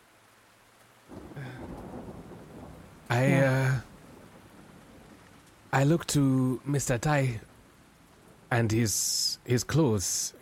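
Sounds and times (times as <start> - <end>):
heavy rain: 0.0 - 10.4
low rumble of thunder: 1.1 - 5.5
speech: 3.1 - 3.9, 5.8 - 7.5, 8.5 - 10.4.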